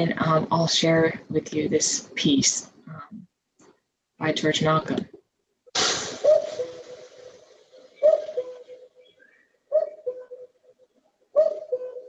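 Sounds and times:
speech: 0:00.0 - 0:02.7, 0:04.2 - 0:05.1
brief rush of noise: 0:05.8 - 0:07.5
cuckoo two-note descending call: 0:05.8 - 0:10.5, 0:11.4 - 0:12.0.

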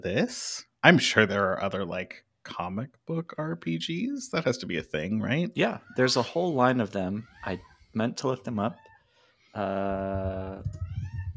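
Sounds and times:
speech: 0:00.0 - 0:08.9, 0:09.6 - 0:10.9
female cat meowing: 0:10.1 - 0:11.3.

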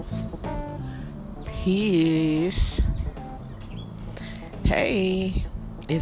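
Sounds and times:
high bird chirps outdoors: 0:00.1 - 0:04.6
speech: 0:01.6 - 0:02.8, 0:04.8 - 0:06.0.

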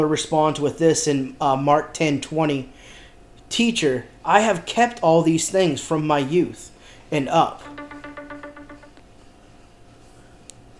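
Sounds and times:
speech: 0:00.0 - 0:07.8
mobile phone ringtone: 0:07.6 - 0:09.0.

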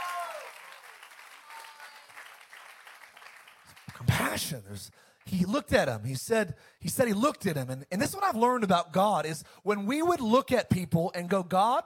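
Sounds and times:
church audience applauding: 0:00.0 - 0:04.3
speech: 0:04.0 - 0:11.8.

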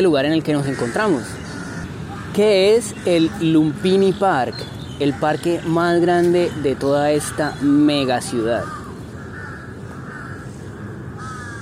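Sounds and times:
speech: 0:00.0 - 0:01.4, 0:02.3 - 0:08.8
crows cawing in a city park: 0:00.0 - 0:04.5, 0:05.1 - 0:11.5
steady outdoor hum: 0:00.0 - 0:11.5.

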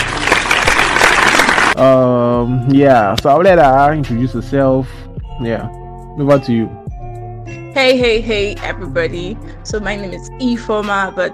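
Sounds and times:
dense applause of many clapping hands welcoming a guest: 0:00.0 - 0:01.8
speech: 0:01.8 - 0:06.8, 0:07.8 - 0:11.3.

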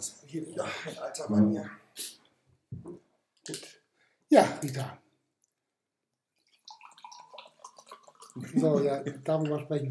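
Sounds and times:
speech: 0:00.3 - 0:02.1, 0:04.3 - 0:05.0, 0:08.4 - 0:09.8
water pouring into a glass: 0:06.4 - 0:09.8.

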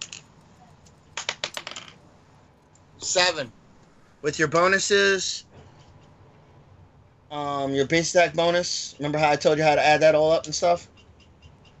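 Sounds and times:
twenty-sided die rolled for an attack roll clattering on a hard tabletop: 0:00.0 - 0:00.2, 0:01.2 - 0:02.0
speech: 0:03.0 - 0:03.6, 0:04.2 - 0:05.5, 0:07.3 - 0:10.9.

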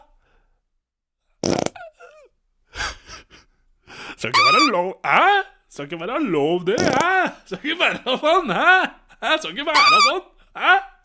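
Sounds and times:
loud fart with squeaky trailing bits: 0:01.4 - 0:01.8, 0:06.8 - 0:07.1
breathy gasping vocal sounds: 0:01.7 - 0:04.2
speech: 0:04.2 - 0:10.9.

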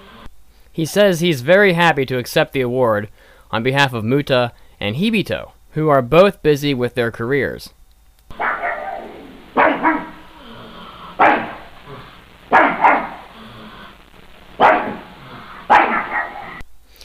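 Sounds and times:
speech: 0:00.8 - 0:07.8
dog barking: 0:08.3 - 0:10.3, 0:11.1 - 0:13.3, 0:14.6 - 0:16.6.

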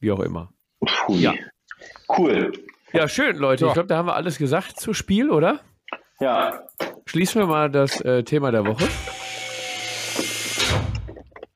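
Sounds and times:
speech: 0:00.0 - 0:09.2
door being pushed shut with rushing scraping noise: 0:08.6 - 0:11.3.

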